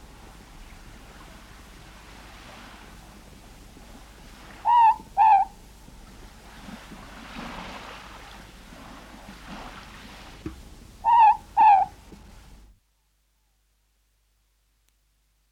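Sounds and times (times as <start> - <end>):
morepork double hoots in New Zealand: 4.5 - 5.6, 11.0 - 12.0
faint tap: 10.4 - 10.7.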